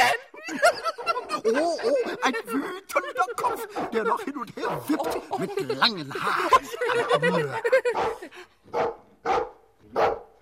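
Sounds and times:
laughter: 0.0s - 8.6s
speech: 0.5s - 8.9s
dog barking: 0.8s - 1.3s, 3.5s - 4.0s, 7.9s - 10.4s.

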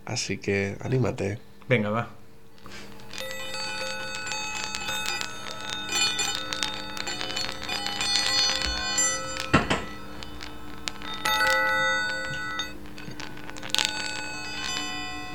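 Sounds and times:
speech: 0.1s - 2.9s
sound balls with floating internal chimes ringing as the balls are moved: 3.0s - 15.3s.

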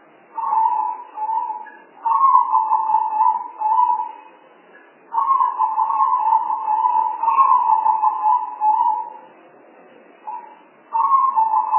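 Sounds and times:
Spotted dove cooing: 0.4s - 4.2s, 5.1s - 9.2s, 10.3s - 11.7s.

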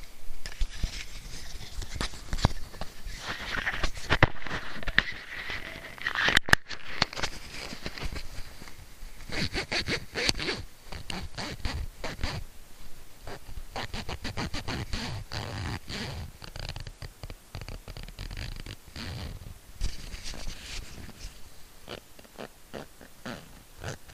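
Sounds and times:
clip-on microphone rubbing against a pants zipper: 0.4s - 12.4s, 13.2s - 24.1s.

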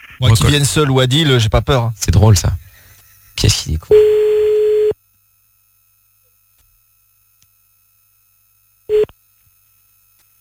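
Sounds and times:
speech: 0.2s - 2.6s, 3.4s - 4.2s
ringing tone of an outgoing telephone call: 3.9s - 5.0s, 8.9s - 9.1s.

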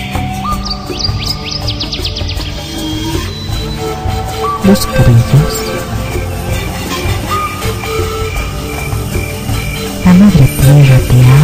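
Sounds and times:
birds singing: 0.0s - 11.4s
speech: 4.7s - 5.6s.

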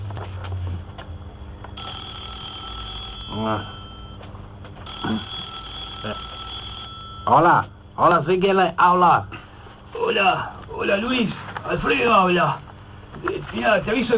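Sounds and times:
telephone ringing in a house with a sustained electronic ring: 1.8s - 7.6s
speech: 3.4s - 3.8s, 5.0s - 5.3s, 6.0s - 6.3s, 7.3s - 12.6s, 13.5s - 14.1s.

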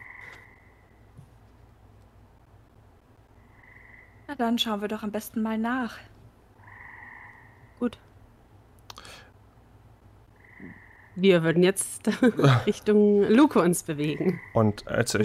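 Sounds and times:
frog croaking with a steady buzzing croak: 0.0s - 1.0s, 3.4s - 4.4s, 6.6s - 7.9s, 10.3s - 11.4s, 14.0s - 15.0s
speech: 4.3s - 6.1s, 7.8s - 8.0s, 11.2s - 15.2s
laughter: 12.1s - 12.8s.

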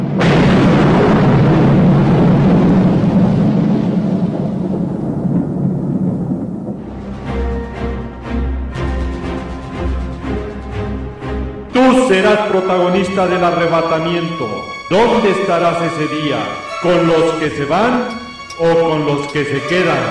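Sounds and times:
thunder rumbling: 0.0s - 16.8s
music: 6.8s - 20.0s
speech: 12.1s - 20.0s.

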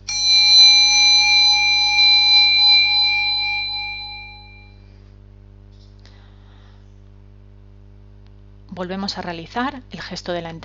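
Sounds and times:
meditation bell struck during a guided breathing exercise: 0.0s - 4.8s
speech: 8.8s - 10.6s.

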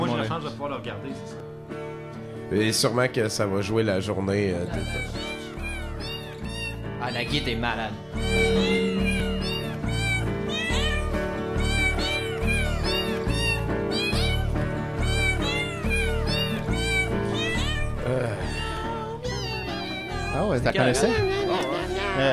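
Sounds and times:
speech: 0.4s - 1.8s, 2.5s - 5.4s, 7.0s - 8.6s, 20.5s - 21.3s, 22.2s - 22.3s
many cats meowing: 4.7s - 22.3s.

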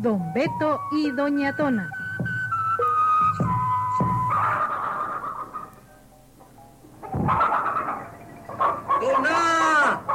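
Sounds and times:
speech: 0.0s - 2.0s
hens and chickens squawking and clucking while being chased: 2.8s - 10.1s.

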